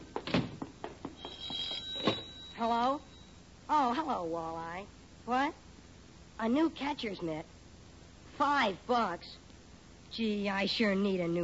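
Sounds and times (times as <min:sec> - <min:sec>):
old-fashioned telephone bell ringing: 0:01.2 - 0:03.4
speech: 0:02.6 - 0:03.1, 0:03.7 - 0:05.6, 0:06.4 - 0:07.5, 0:08.4 - 0:09.4, 0:10.1 - 0:11.4.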